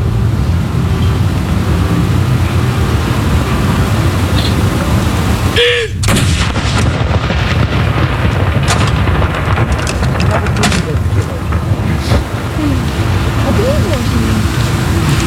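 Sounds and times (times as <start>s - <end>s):
steady wind noise: 0.0s - 15.2s
cannon salute shot from Akershus Fortress in Oslo Norway: 6.0s - 12.5s
faint voices of a crowd watching from the quay: 10.0s - 15.2s.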